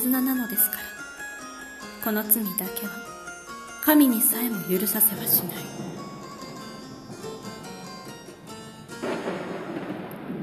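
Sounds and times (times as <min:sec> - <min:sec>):
speech: 0:00.0 - 0:01.0, 0:02.0 - 0:03.2, 0:03.9 - 0:05.9
thunder rumbling: 0:04.7 - 0:10.4
heavy rain in a thunderstorm: 0:05.1 - 0:10.4
thunderstorm wind: 0:05.5 - 0:10.4.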